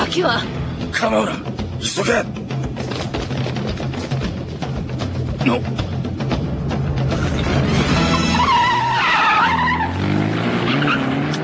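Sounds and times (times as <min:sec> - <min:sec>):
speech: 0:00.1 - 0:02.8, 0:05.4 - 0:05.9
car engine roaring while accelerating hard: 0:02.7 - 0:11.4
car tires squealing sharply in a long skid: 0:07.2 - 0:11.4.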